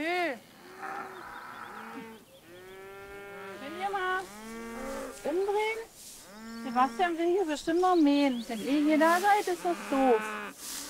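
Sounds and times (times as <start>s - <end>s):
calves mooing on a pasture: 0.6s - 7.8s, 8.5s - 10.8s
speech: 6.8s - 10.4s.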